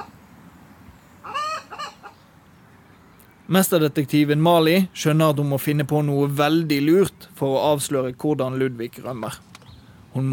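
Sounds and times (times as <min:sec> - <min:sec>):
startled hens clucking and squawking in a henhouse: 0:01.2 - 0:02.2
speech: 0:03.5 - 0:09.5, 0:10.2 - 0:10.3.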